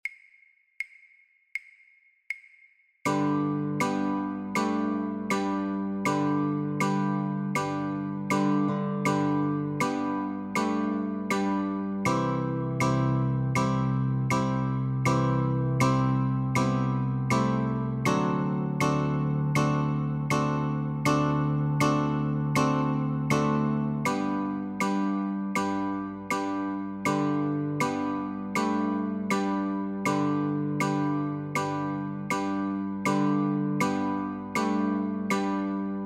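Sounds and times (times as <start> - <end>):
guitar playing Christmas song notes and chords: 3.1 - 36.0.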